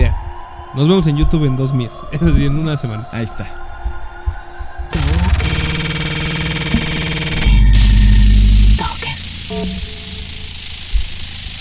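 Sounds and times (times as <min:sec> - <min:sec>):
speech: 0:00.7 - 0:03.7
loud buzzing drone with repeating tones from a frozen pirate Famicom console: 0:04.9 - 0:11.5
louder low hum from a glitching video game console: 0:04.9 - 0:11.5
broken stuttering static from a glitching video game console: 0:05.0 - 0:11.5.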